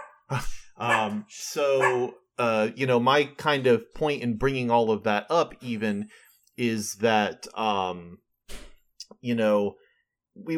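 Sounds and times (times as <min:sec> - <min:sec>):
dog barking: 0:00.0 - 0:00.2, 0:00.8 - 0:01.2, 0:01.8 - 0:02.1
speech: 0:00.3 - 0:09.8, 0:10.4 - 0:10.5.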